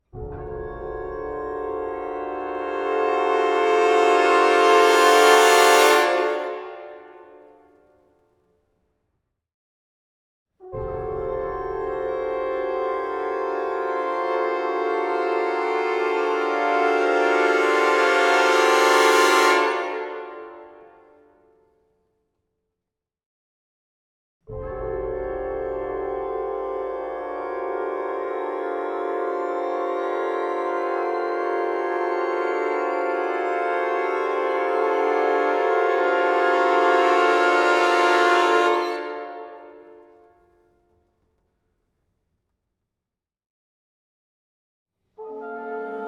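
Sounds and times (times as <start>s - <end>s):
orchestra tutti swell: 1.1s - 6.9s, 11.8s - 20.6s, 25.3s - 39.4s.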